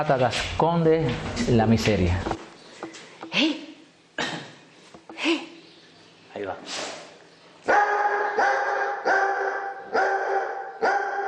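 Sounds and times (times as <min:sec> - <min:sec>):
speech: 0:00.0 - 0:02.4
dog barking: 0:07.7 - 0:11.2.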